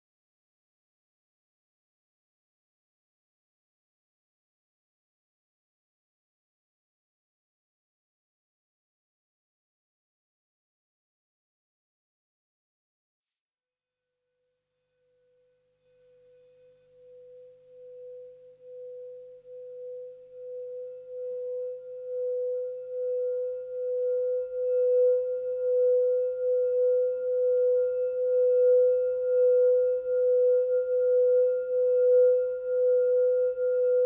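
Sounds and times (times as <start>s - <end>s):
meditation music: 14.9s - 34.0s
crystal singing bowls: 15.0s - 34.0s.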